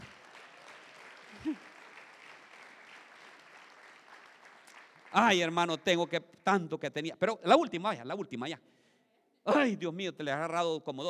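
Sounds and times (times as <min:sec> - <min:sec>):
audience applauding: 0:00.0 - 0:06.1
speech: 0:01.4 - 0:01.7, 0:05.2 - 0:08.8, 0:09.4 - 0:11.0.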